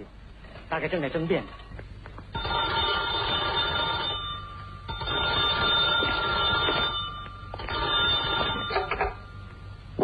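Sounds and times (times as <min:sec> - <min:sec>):
speech: 0:00.0 - 0:01.8
old-fashioned telephone bell ringing: 0:02.3 - 0:09.7.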